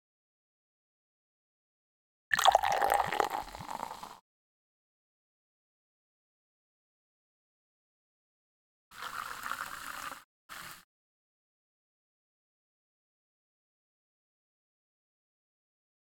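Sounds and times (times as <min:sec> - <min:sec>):
carbonated soda fizzing in a glass: 0:02.3 - 0:04.2, 0:09.0 - 0:10.8.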